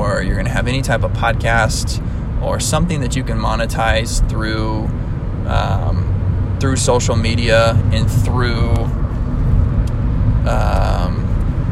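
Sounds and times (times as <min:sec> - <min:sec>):
car driving on the road heard from the driver's seat: 0:00.0 - 0:11.6
high whine: 0:00.0 - 0:11.6
speech: 0:00.2 - 0:09.0, 0:10.4 - 0:11.3.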